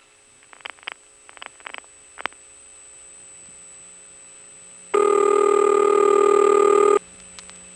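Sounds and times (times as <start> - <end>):
loud steady telephone tone: 2.2 - 7.7.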